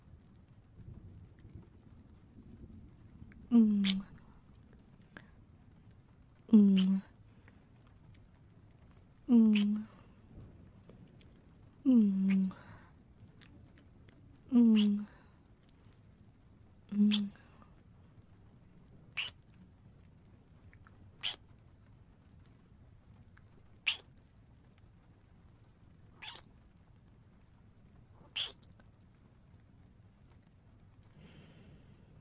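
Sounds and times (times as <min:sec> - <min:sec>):
soft murmured hum: 0:00.0 - 0:32.1
wet kissing smacks of lips pressed to a mouth: 0:06.8 - 0:07.0, 0:09.6 - 0:09.8, 0:17.1 - 0:17.3, 0:19.2 - 0:19.5, 0:21.2 - 0:21.4, 0:23.9 - 0:24.1, 0:28.4 - 0:28.7.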